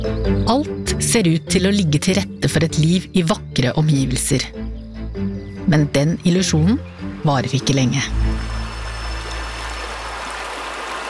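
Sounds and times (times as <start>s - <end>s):
speech: 0.2s - 4.6s, 5.2s - 8.4s
river water flowing slowly through flat landscape: 6.4s - 11.0s.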